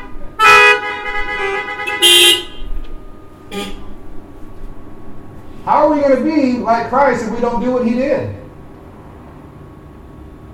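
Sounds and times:
car horns honking: 0.0s - 4.2s
speech: 5.7s - 8.4s.

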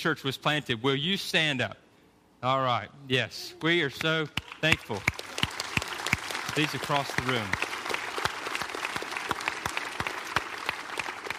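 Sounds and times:
speech: 0.0s - 1.8s, 2.4s - 5.2s, 6.6s - 7.7s
room full of people applauding: 4.4s - 11.3s.

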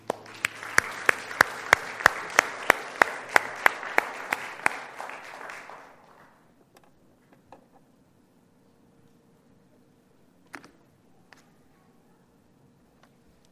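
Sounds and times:
church audience applauding: 0.0s - 6.5s
rhythmic unison clapping: 0.0s - 6.5s.

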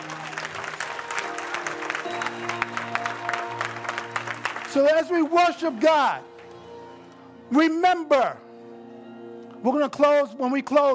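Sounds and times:
audience clapping during a church worship service: 0.0s - 6.7s
speech: 4.7s - 6.3s, 7.5s - 8.4s, 9.6s - 10.9s.

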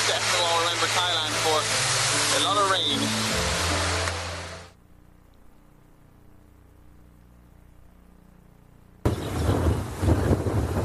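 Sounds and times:
heavy rain pouring: 0.0s - 4.8s, 9.1s - 10.8s.

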